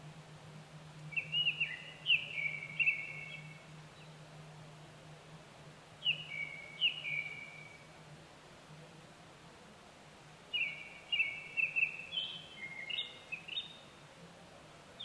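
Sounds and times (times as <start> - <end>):
faint constant low hum: 0.0 - 15.0
Japanese thrush singing whistled phrases of clear sliding fluty notes: 1.1 - 3.5, 6.0 - 7.9, 10.5 - 13.8.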